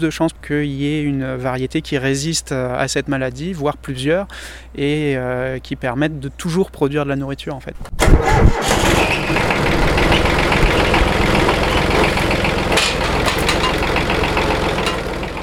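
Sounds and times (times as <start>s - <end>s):
speech: 0.0s - 9.4s
micro-tractor engine on a farm starting and idling: 7.9s - 15.4s.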